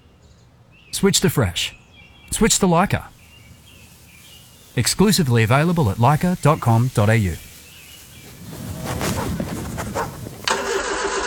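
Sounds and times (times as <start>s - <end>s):
speech: 0.9s - 3.2s, 4.8s - 7.5s
ute engine cranking and starting: 10.4s - 11.2s.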